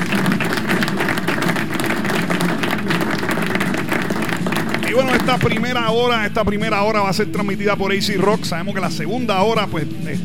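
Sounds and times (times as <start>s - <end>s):
crowd applauding: 0.0s - 6.2s
speech: 5.3s - 10.2s.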